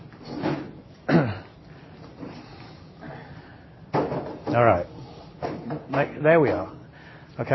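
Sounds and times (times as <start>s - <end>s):
chairs being moved and set down: 0.1s - 0.9s, 3.9s - 6.7s
speech: 4.5s - 4.9s, 5.9s - 6.8s, 7.4s - 7.5s.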